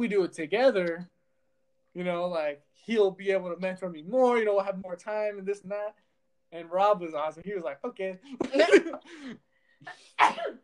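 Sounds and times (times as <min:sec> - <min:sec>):
speech: 0:00.0 - 0:01.2, 0:02.0 - 0:10.6
person sneezing: 0:08.6 - 0:10.6.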